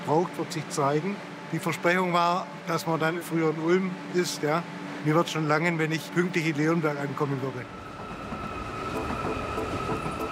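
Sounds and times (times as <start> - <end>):
ICE high-speed train arriving at Stuttgart station: 0.0 - 10.3
speech: 0.1 - 7.8.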